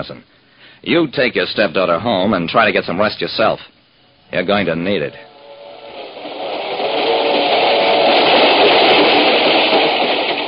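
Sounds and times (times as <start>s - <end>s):
speech: 0.0s - 3.7s, 4.3s - 5.3s
train rumbling along rails: 5.1s - 10.4s.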